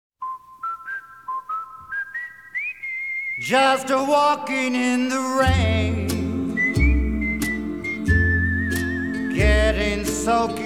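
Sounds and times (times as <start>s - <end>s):
whistled opening of a rock and roll song: 0.2s - 3.9s, 5.8s - 10.6s
speech: 3.4s - 6.1s.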